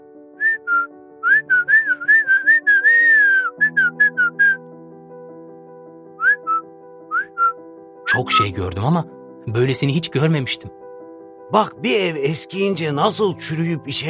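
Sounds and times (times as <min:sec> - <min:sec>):
soft music: 0:00.0 - 0:14.0
parrot whistling chirps and trills: 0:00.5 - 0:04.6, 0:06.2 - 0:07.6
speech: 0:08.2 - 0:10.8, 0:11.5 - 0:14.0.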